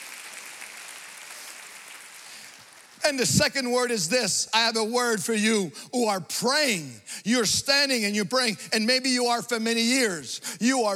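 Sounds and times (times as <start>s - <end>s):
congregation clapping during a church service: 0.0s - 3.5s
speech: 3.0s - 10.9s.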